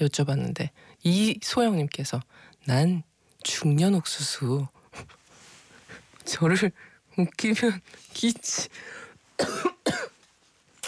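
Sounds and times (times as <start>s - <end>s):
speech: 0.0s - 5.2s, 6.3s - 10.0s
person coughing: 9.4s - 10.2s.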